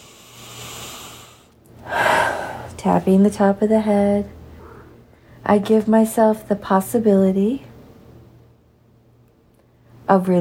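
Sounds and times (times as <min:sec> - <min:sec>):
deep breath during a tapping relaxation exercise: 0:00.0 - 0:02.8, 0:04.4 - 0:05.4
speech: 0:02.8 - 0:04.4, 0:05.5 - 0:07.7, 0:10.1 - 0:10.3.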